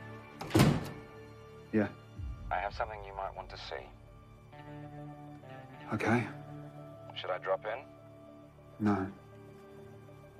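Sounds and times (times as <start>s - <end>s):
door being shut in a bar: 0.4s - 1.1s
speech: 1.7s - 4.0s, 5.9s - 6.4s, 7.2s - 8.0s, 8.8s - 9.2s
low rumble: 2.2s - 4.6s.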